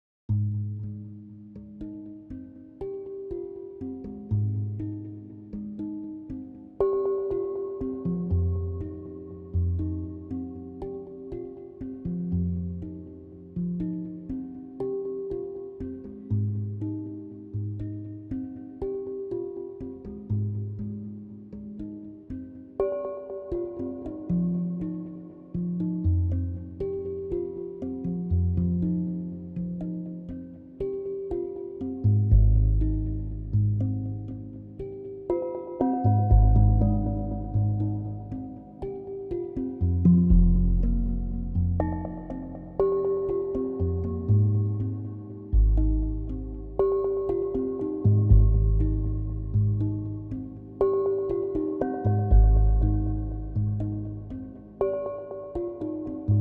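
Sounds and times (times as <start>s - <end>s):
aquatic glockenspiel machine tones: 1.1s - 56.3s.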